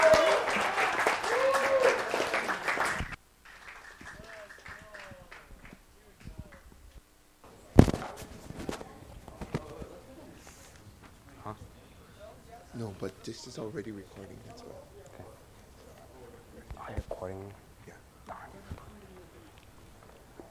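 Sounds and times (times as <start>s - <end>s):
audience applause for a speaker: 0.0s - 6.6s
speech: 13.0s - 15.1s, 17.2s - 17.6s.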